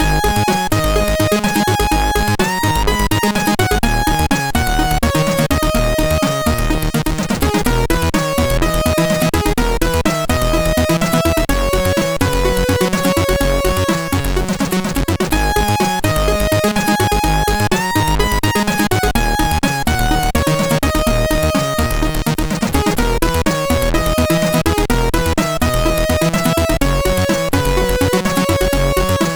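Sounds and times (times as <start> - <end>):
chiptune end sequence music on a MOS6581R3 SID chip: 0.0 - 29.3.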